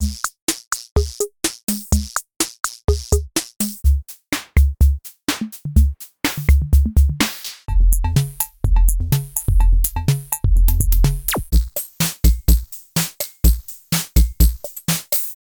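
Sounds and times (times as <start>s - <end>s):
vintage drum machine beats: 0.0s - 15.4s.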